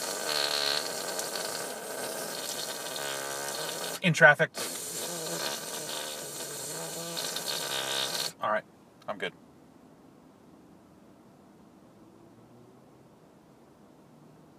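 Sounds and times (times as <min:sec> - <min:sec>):
voice blowing a sputtering raspberry imitating a fart: 0:00.0 - 0:08.4
speech: 0:04.0 - 0:04.8, 0:08.5 - 0:09.4.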